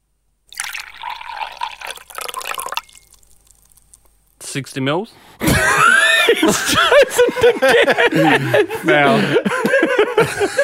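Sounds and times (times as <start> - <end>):
faint settling fizz: 0.5 - 4.1
liquid poured into a glass: 0.5 - 4.1
speech: 4.5 - 10.6
laughter: 5.4 - 10.6.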